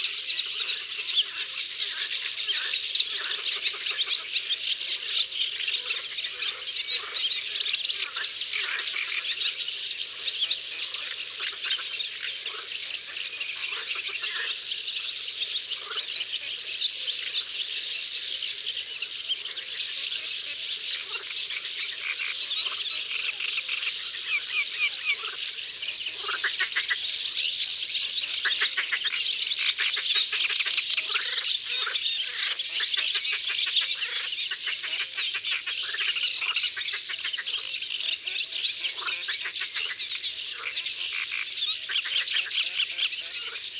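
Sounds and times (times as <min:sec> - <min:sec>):
common starlings calling in Isere: 0:00.1 - 0:43.7.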